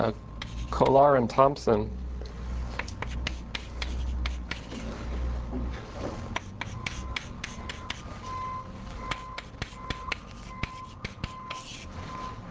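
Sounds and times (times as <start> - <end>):
speech: 0.0 - 2.0
low room hum: 0.0 - 12.4
chalk or marker writing a polynomial equation on a board: 0.4 - 1.0, 2.8 - 4.9, 6.3 - 8.1, 9.1 - 11.9.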